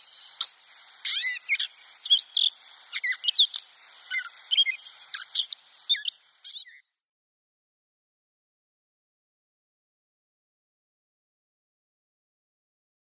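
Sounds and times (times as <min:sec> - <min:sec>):
gray catbird song: 0:00.0 - 0:07.0.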